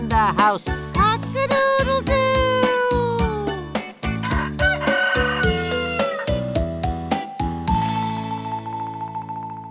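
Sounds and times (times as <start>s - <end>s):
upbeat musical backing with punchy drum hits: 0.0s - 9.6s
speech: 0.2s - 1.0s
rooster crowing: 4.2s - 6.4s.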